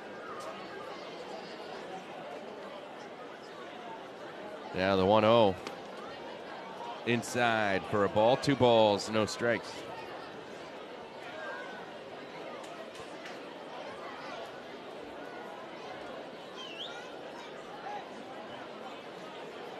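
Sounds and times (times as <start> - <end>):
large ballpark stadium crowd chattering: 0.0 - 19.7
speech: 4.7 - 5.7, 7.1 - 9.9
faint crowd whistles or calls: 16.6 - 17.1.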